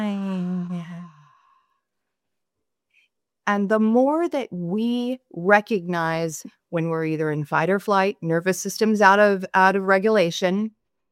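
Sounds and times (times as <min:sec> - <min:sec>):
person letting out a long deep sigh after a held breath: 0:00.0 - 0:01.4
speech: 0:03.5 - 0:10.8.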